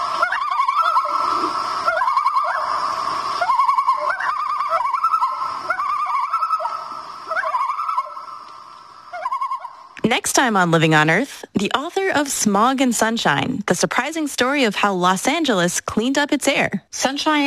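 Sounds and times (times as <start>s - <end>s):
common loon territorial warning tremolo call: 0.0s - 10.5s
speech: 10.1s - 17.4s.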